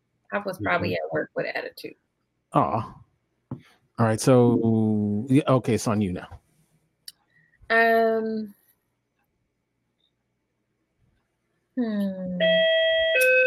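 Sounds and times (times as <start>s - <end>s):
speech: 0.3s - 6.4s, 7.7s - 8.6s, 11.8s - 13.4s
electronic doorbell chiming: 12.4s - 13.4s.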